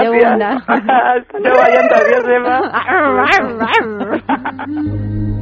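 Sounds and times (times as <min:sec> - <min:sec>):
laughter: 0:00.0 - 0:05.0
speech: 0:00.0 - 0:05.3
person imitating a wild animal growl: 0:01.5 - 0:05.0.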